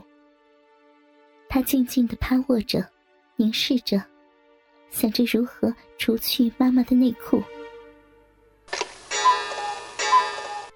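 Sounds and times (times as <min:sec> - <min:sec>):
speech: 0:01.5 - 0:04.1, 0:04.9 - 0:07.5
wall clock in a living room chiming: 0:09.1 - 0:10.7.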